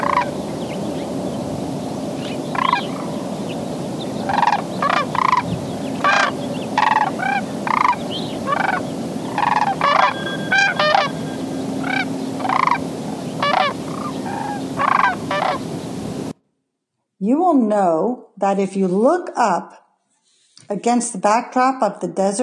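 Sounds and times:
Sandhill Crane rattling bugle calls: 0:00.0 - 0:16.3
faint steady tone: 0:00.0 - 0:16.3
speech: 0:17.8 - 0:19.8, 0:20.7 - 0:22.4.

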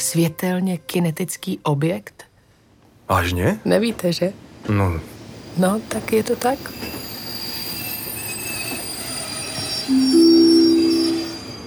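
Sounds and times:
speech: 0:00.1 - 0:02.3, 0:03.1 - 0:07.0
train wheels squealing as a train pulls into a railway station: 0:06.1 - 0:11.6.

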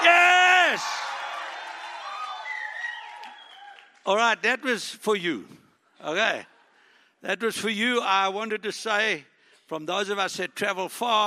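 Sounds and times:
audience cheering and shouting: 0:00.0 - 0:03.9
speech: 0:04.0 - 0:06.5, 0:07.2 - 0:11.2.

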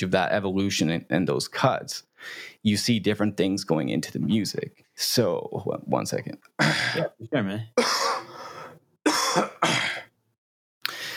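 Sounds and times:
speech: 0:00.0 - 0:08.3
throat clearing and coughing from a dry throat after smoking a bowl: 0:06.6 - 0:07.2, 0:07.8 - 0:08.3, 0:09.1 - 0:10.1.

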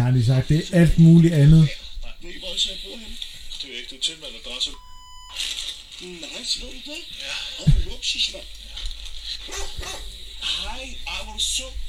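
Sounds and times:
steady hum: 0:00.0 - 0:11.8
speech: 0:00.1 - 0:08.8, 0:09.5 - 0:11.8
dog barking and yipping: 0:09.5 - 0:10.1.

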